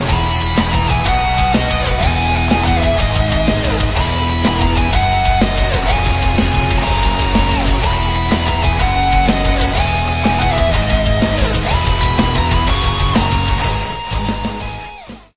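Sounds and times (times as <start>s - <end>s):
metal music: 0.0s - 15.3s.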